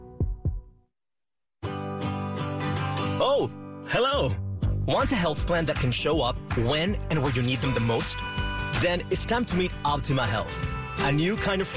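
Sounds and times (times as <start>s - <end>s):
deep lub-dub heartbeat: 0.0s - 0.8s
bright busy music track: 2.0s - 11.7s
speech: 3.2s - 11.7s.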